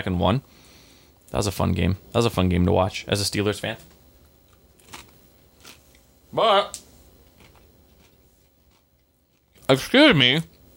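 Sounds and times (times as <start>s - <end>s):
speech: 0.0s - 0.6s, 1.3s - 3.9s, 6.3s - 6.8s, 9.7s - 10.5s
crunchy chewing of food: 4.2s - 6.1s, 6.7s - 10.6s.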